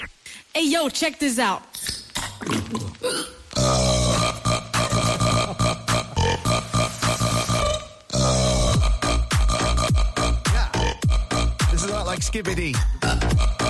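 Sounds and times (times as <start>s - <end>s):
speech: 0.6s - 1.8s, 2.4s - 3.8s, 12.4s - 13.6s
woman burping a song after fizzy drink: 2.2s - 6.7s, 7.6s - 11.6s.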